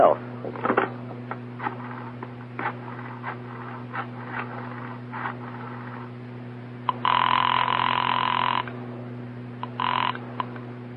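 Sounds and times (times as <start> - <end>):
faint low electrical hum: 0.0 - 10.9
telephone ringing: 6.9 - 8.7, 9.6 - 10.2.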